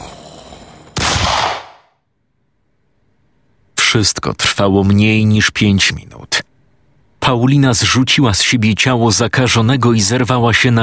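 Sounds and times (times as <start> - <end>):
low hum: 0.0 - 10.8
gunshot: 1.0 - 2.0
speech: 4.0 - 6.4, 7.3 - 10.8.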